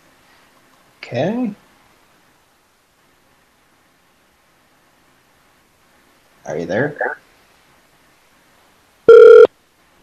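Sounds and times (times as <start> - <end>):
speech: 1.1 - 1.6, 6.5 - 7.2
electronic telephone ring: 9.1 - 9.5.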